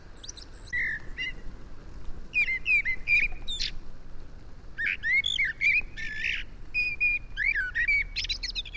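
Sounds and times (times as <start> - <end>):
low background rumble: 0.0 - 8.7
Eurasian blackbird calling with fluty notes and sharp high twitters: 0.1 - 1.5, 2.3 - 3.8, 4.8 - 8.7.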